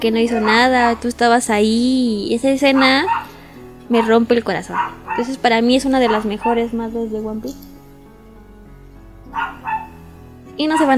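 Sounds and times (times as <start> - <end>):
speech: 0.0 - 3.2, 3.9 - 7.7, 10.6 - 10.9
dog barking: 0.2 - 0.9, 2.6 - 4.1, 4.7 - 6.7, 9.4 - 10.0.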